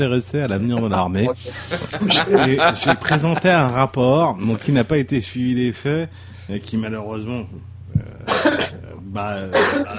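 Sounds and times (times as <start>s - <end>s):
speech: 0.0s - 7.7s, 8.3s - 9.9s
laughter: 0.6s - 3.7s
person coughing and clearing their throat: 8.0s - 8.8s, 9.5s - 9.9s.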